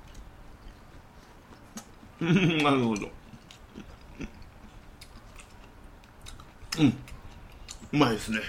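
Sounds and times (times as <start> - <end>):
faint chewing of grilled eggplant topped with miso and a shiso leaf: 0.0 - 8.4
speech: 2.2 - 3.2, 6.8 - 7.0, 7.9 - 8.4.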